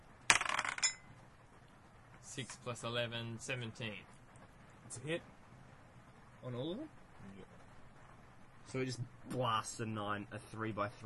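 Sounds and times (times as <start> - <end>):
d20 die clattering onto a hard tabletop: 0.3 - 1.1
speech: 2.4 - 4.2, 4.9 - 5.4, 6.4 - 7.6, 8.7 - 11.0.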